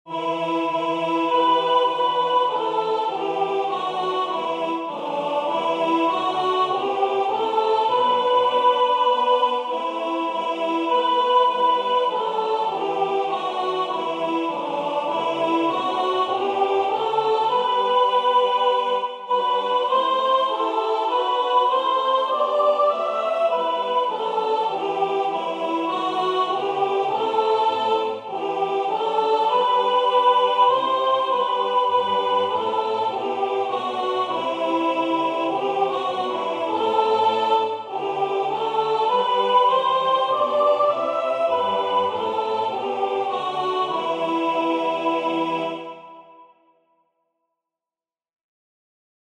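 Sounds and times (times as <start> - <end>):
soprano singing a carol: 0.1 - 46.3.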